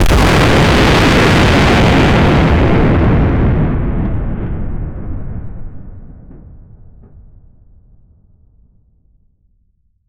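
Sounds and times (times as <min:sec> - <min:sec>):
explosions, detonation: 0:00.0 - 0:07.5.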